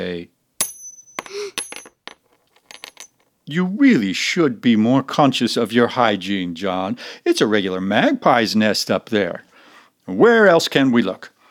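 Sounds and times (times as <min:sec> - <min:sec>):
speech: 0:00.0 - 0:00.3, 0:03.5 - 0:09.5, 0:10.1 - 0:11.3
coins dropping and clinking on a hard surface: 0:00.6 - 0:03.3.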